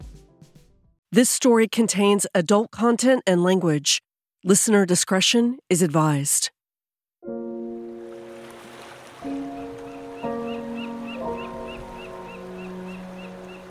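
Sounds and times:
speech: 1.1 - 6.6
steady wash on the Mississippi River shore: 7.3 - 13.6
sustained organ-like musical chords: 9.3 - 13.6
faint rapid high chirping: 9.6 - 13.6.

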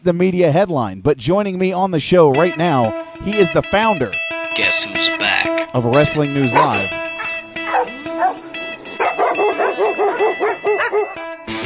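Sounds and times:
speech: 0.0 - 7.0
dog yipping and whining: 6.6 - 11.2.

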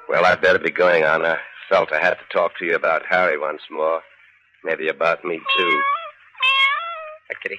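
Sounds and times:
speech: 0.2 - 6.5, 7.3 - 7.5
cat giving a long drawn-out meow: 5.3 - 7.3.

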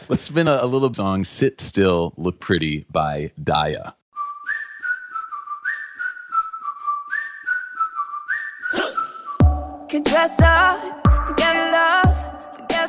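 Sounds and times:
speech: 0.1 - 4.0, 9.9 - 12.0
clear bright whistled melody in a pop song: 4.1 - 10.0
punchy beat with deep bass hits: 9.4 - 12.8.

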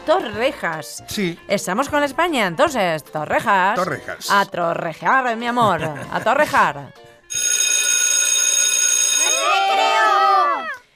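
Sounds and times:
speech: 0.0 - 7.5
laughter: 5.6 - 6.6
school bell ringing for recess: 7.3 - 10.1.

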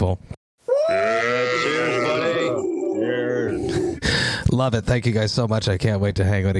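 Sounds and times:
small group of people cheering and whooping on a video call: 0.7 - 4.0
speech: 4.6 - 6.5.

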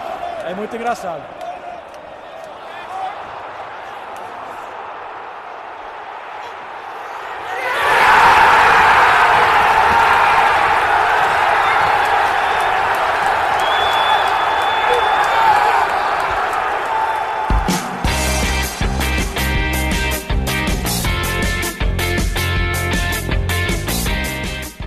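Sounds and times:
speech: 0.5 - 1.4
large crowd of football fans roaring and chanting in a stadium: 2.2 - 18.1
crowd rhythmic clapping: 11.2 - 24.7.

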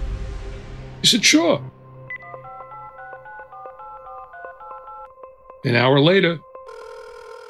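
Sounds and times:
speech: 1.0 - 1.8, 5.6 - 6.5
cell phone keypad tones as a number is dialed: 2.1 - 5.6, 6.7 - 7.4.

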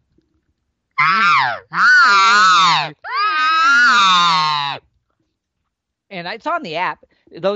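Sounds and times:
cow elk contact buzzes blown on a reed elk call: 1.0 - 4.8
speech: 6.3 - 7.5.

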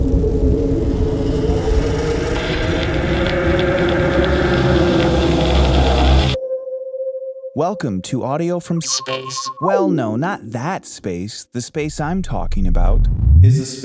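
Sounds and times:
blizzard wind roaring: 0.0 - 6.4
speech: 7.6 - 13.8.

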